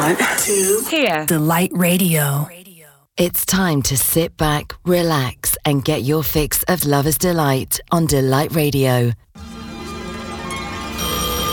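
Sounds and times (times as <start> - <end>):
speech: 0.1 - 2.6, 3.2 - 9.2
telephone ringing: 10.4 - 11.5.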